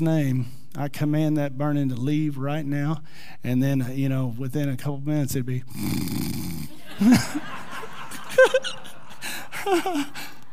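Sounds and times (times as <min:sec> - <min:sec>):
speech: 0:00.0 - 0:07.6, 0:08.3 - 0:08.9, 0:09.6 - 0:10.3
voice imitating a woman's soft snore: 0:05.7 - 0:06.8
laughter: 0:06.7 - 0:10.5.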